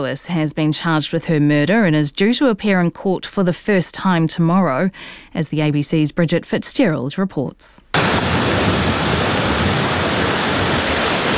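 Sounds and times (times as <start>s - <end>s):
speech: 0.0s - 8.4s
surf rushing on a beach: 8.0s - 11.3s.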